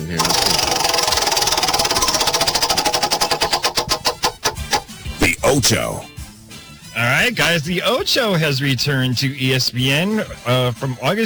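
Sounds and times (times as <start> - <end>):
prize wheel being spun by hand: 0.0 - 5.7
speech: 5.5 - 6.1, 7.2 - 11.2.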